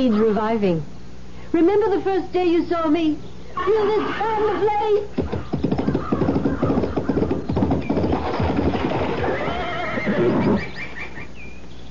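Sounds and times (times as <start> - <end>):
speech: 0.0 - 0.9, 1.5 - 5.3
horse whinnying: 3.6 - 11.3
horse hooves clopping: 3.6 - 11.7.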